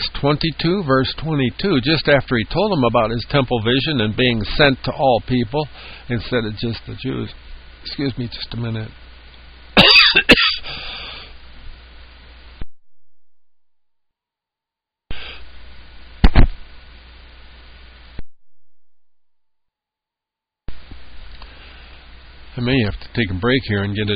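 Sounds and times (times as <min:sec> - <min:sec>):
speech: 0:00.2 - 0:09.0, 0:10.1 - 0:10.5, 0:22.6 - 0:24.1
person coughing: 0:09.8 - 0:10.8.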